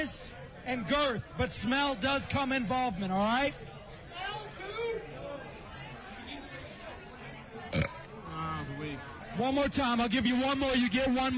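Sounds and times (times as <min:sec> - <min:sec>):
speech: 0:00.0 - 0:03.8, 0:08.9 - 0:11.3
murmur of people chattering: 0:00.0 - 0:11.3
loud belch: 0:07.7 - 0:08.1.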